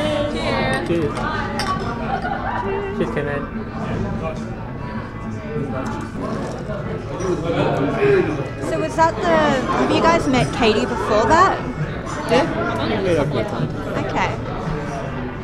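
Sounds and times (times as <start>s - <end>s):
lively crowd chatter and murmuring voices: 0.0s - 15.4s
speech: 0.9s - 1.4s, 3.0s - 4.7s, 5.5s - 14.4s
glasses clinking in a toast: 1.6s - 2.0s
laughter: 1.8s - 3.5s.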